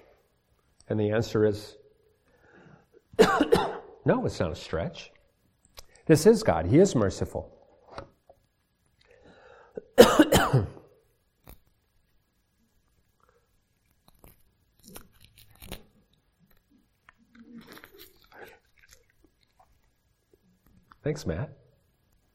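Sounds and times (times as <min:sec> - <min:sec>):
speech: 0:00.9 - 0:01.8, 0:03.2 - 0:05.1, 0:06.1 - 0:08.1, 0:21.1 - 0:21.6
faint crinkles and clicks: 0:05.1 - 0:06.1, 0:07.7 - 0:09.3, 0:11.0 - 0:21.1
cough drop wrapper being torn open: 0:13.8 - 0:19.9.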